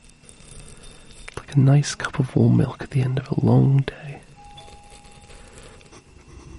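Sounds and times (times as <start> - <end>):
speech: 1.6 - 4.1
bell-like ring possibly a doorbell: 4.4 - 5.3.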